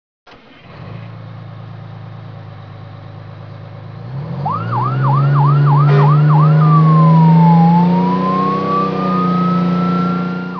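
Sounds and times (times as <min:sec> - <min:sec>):
police car: 0:00.3 - 0:10.5.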